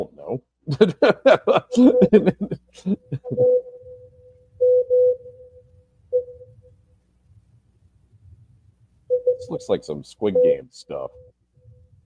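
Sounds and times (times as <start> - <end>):
speech: 0.3 - 3.4, 9.4 - 11.2
laughter: 0.7 - 3.6
mid-pitched Morse code beeps: 1.8 - 2.3, 3.2 - 6.6, 9.1 - 9.6, 10.3 - 10.6.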